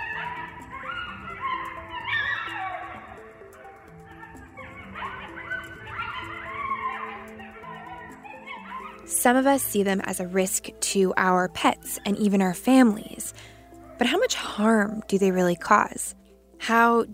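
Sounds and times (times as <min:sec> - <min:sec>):
pack of coyotes howling and yipping: 0:00.0 - 0:15.7
speech: 0:09.2 - 0:17.1.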